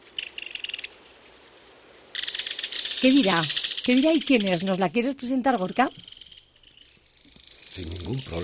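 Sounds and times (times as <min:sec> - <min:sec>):
common kingfisher calling: 0:00.1 - 0:01.0, 0:02.2 - 0:08.4
speech: 0:03.0 - 0:06.1, 0:07.8 - 0:08.4.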